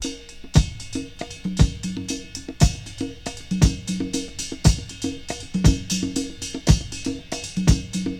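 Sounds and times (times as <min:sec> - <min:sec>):
fresh drum groove in C sharp key with kick tuned to C sharp: 0:00.0 - 0:08.1.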